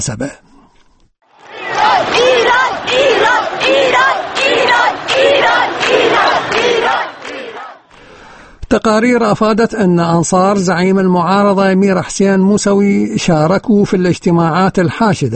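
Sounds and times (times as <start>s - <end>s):
speech: 0.0s - 0.5s, 8.7s - 15.3s
large crowd chanting anti-government slogans in central Tehran on Quds Day: 1.3s - 8.0s.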